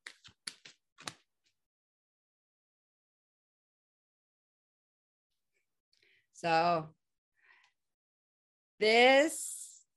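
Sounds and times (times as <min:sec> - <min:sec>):
deck of cards being shuffled: 0:00.0 - 0:01.3
speech: 0:06.4 - 0:07.0, 0:08.8 - 0:09.6.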